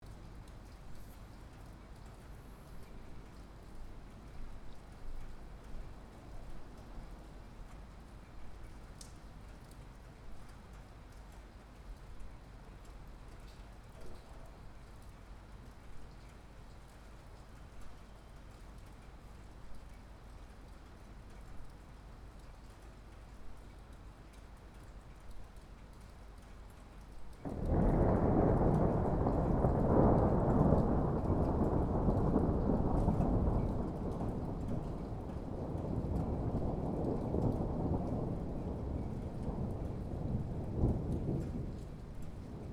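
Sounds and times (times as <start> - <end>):
rain outside a window: 0.0 - 42.7
thunder: 27.4 - 42.7.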